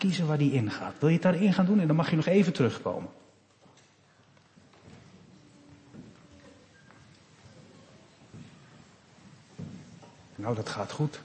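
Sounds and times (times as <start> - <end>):
speech: 0.0 - 3.2, 10.4 - 11.2
child's light footsteps on a hard floor: 3.4 - 10.4.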